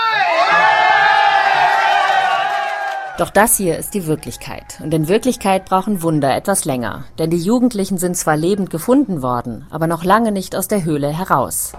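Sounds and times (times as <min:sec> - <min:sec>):
rescue teams cheering after finding people missing in a flooded cave: 0:00.0 - 0:05.8
speech: 0:03.2 - 0:11.7.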